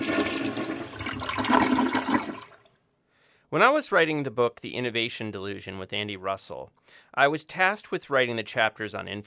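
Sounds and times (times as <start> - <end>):
toilet flushing: 0.0 - 2.7
speech: 3.5 - 9.2.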